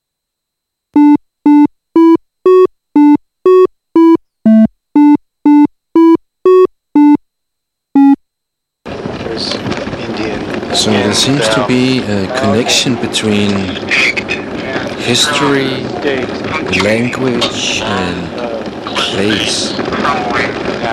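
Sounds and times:
simple melody of short electronic tones within one octave: 0:01.0 - 0:07.2, 0:08.0 - 0:08.2
loud broadband noise burst: 0:08.9 - 0:20.9
speech: 0:11.2 - 0:14.4, 0:15.1 - 0:18.4, 0:19.2 - 0:20.6.

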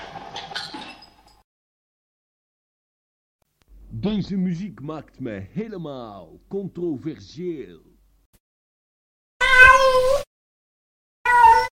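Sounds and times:
speech: 0:04.0 - 0:07.9
cat meowing: 0:09.4 - 0:10.3, 0:11.2 - 0:11.7.

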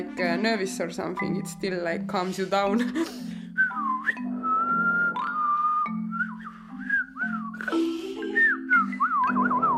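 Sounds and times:
speech: 0:00.2 - 0:03.4
person whistling a lively melody: 0:03.6 - 0:09.7.

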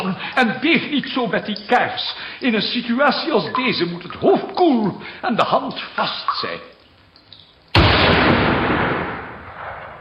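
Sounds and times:
speech: 0:00.2 - 0:06.7
gunshot fired near houses: 0:07.8 - 0:10.0.

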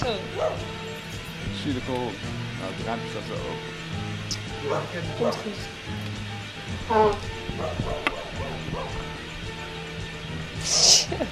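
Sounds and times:
dogs barking outdoors as new dogs are introduced: 0:00.2 - 0:01.0, 0:04.4 - 0:05.6, 0:06.9 - 0:09.7
speech: 0:01.6 - 0:09.2, 0:10.6 - 0:11.3.

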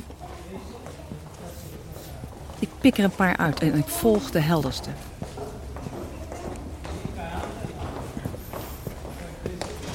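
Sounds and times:
faint footsteps on a hard surface: 0:00.0 - 0:09.9
speech: 0:02.6 - 0:05.1.

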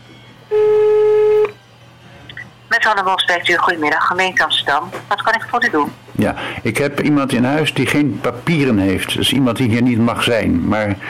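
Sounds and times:
telephone ringing tone as a call to a municipal office is put through: 0:00.5 - 0:01.6
speech: 0:02.9 - 0:11.0.

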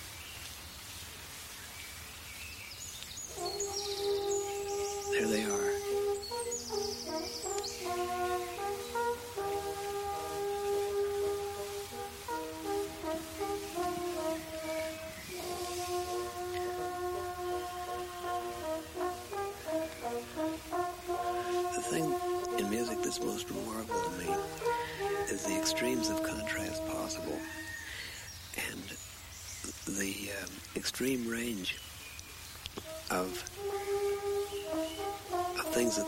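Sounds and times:
faint bird chirps: 0:01.6 - 0:36.0
two separated brass horn groups playing sustained chords outdoors: 0:03.3 - 0:27.9, 0:32.8 - 0:36.0
speech: 0:31.0 - 0:31.9.

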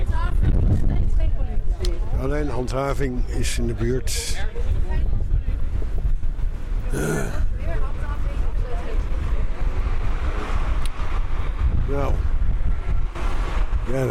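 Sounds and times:
steady outdoor wind buffeting the microphone: 0:00.0 - 0:02.6, 0:03.8 - 0:14.0
speech: 0:02.2 - 0:04.8, 0:06.9 - 0:07.5, 0:11.9 - 0:12.3, 0:13.9 - 0:14.0
indistinct voice murmuring faintly: 0:06.9 - 0:07.6.

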